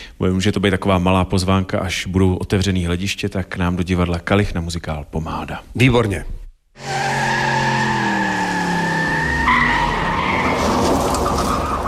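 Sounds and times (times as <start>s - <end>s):
speech: 0.2s - 7.2s
car engine revving loudly: 6.8s - 11.5s
car tires screeching in a long sustained skid: 6.8s - 11.8s.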